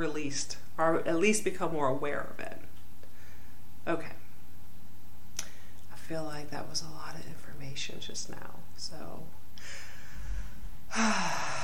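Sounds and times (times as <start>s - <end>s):
speech: 0.0s - 2.6s, 3.8s - 4.2s, 6.1s - 9.8s, 10.9s - 11.6s
person taking a slow deep breath during a guided breathing exercise: 9.6s - 11.6s.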